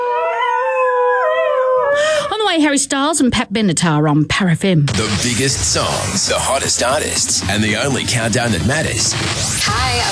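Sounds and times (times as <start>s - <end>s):
dogs howling in chorus: 0.0s - 2.1s
speech: 2.5s - 10.0s.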